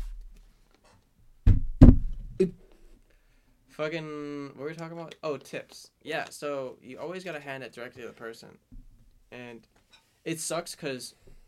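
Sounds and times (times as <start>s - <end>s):
sharp knocking on wood: 1.5s - 2.3s
speech: 2.4s - 2.6s, 3.8s - 8.7s, 9.3s - 11.2s.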